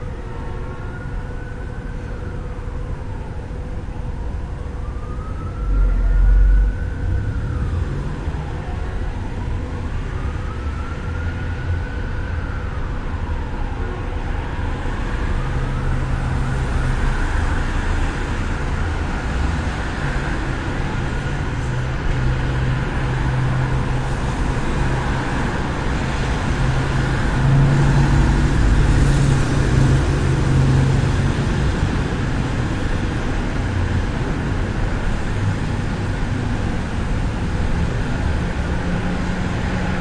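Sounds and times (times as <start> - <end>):
city at night: 0.0 - 39.9.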